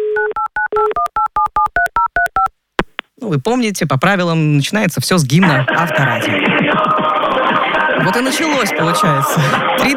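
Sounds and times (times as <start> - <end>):
two-tone telephone keypad beeps dialing a call: 0.2 - 2.5
speech: 3.3 - 7.1, 8.0 - 9.9.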